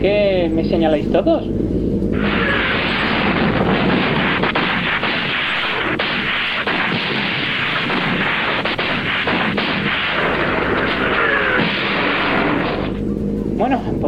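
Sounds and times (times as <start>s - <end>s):
speech: 0.0s - 2.4s, 13.6s - 14.0s
cannon fire: 2.2s - 13.0s
explosions: 2.2s - 13.0s.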